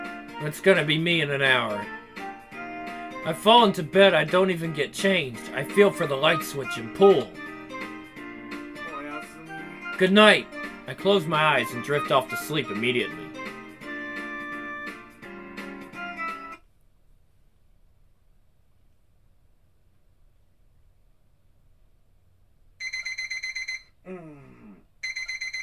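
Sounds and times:
speech: 0.4 - 2.0, 3.2 - 7.4, 10.0 - 13.2
loud electronic alarm clock ringing in a bedroom: 22.8 - 24.0, 25.0 - 25.6.

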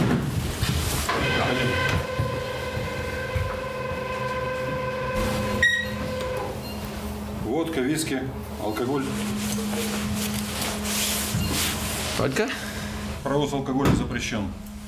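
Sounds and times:
passenger train wheels rumbling on rails: 0.2 - 6.5
high metallic whine inside a moving passenger train: 1.1 - 13.7
speech: 7.8 - 10.3, 12.2 - 12.6, 13.2 - 14.6.

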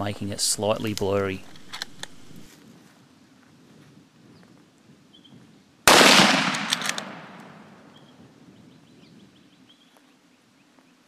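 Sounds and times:
speech: 0.0 - 1.6
.375 rifle firing 270-grain copper bullets at a buffalo: 5.9 - 7.9.

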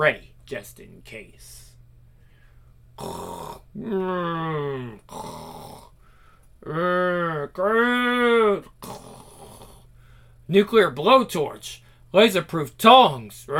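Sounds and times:
speech: 0.0 - 1.7, 3.0 - 5.8, 6.6 - 8.7, 10.5 - 13.5
exaggerated cartoonish snoring: 3.0 - 6.0, 8.8 - 9.9.

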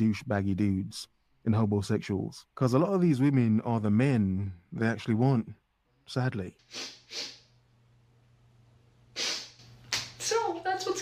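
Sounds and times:
speech: 0.0 - 7.4
faint steady hum: 0.0 - 11.0
woman sniffling: 6.7 - 7.4, 9.2 - 9.6.

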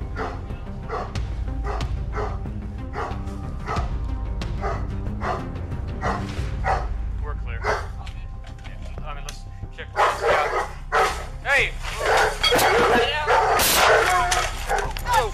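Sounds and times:
agitated dog barking loudly in an apartment: 0.1 - 3.9, 4.6 - 6.9, 7.6 - 8.0, 9.9 - 11.4, 11.9 - 15.2.

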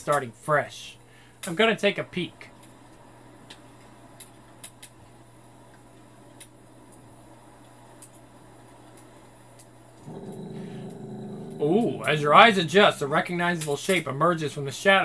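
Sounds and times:
speech: 0.0 - 2.5, 11.6 - 15.0
wolf growling: 10.0 - 14.0.

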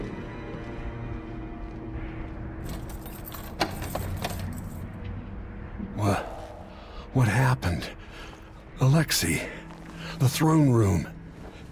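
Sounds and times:
keys jangling: 2.6 - 4.9
speech: 7.1 - 8.0, 9.0 - 9.6, 10.2 - 11.1.

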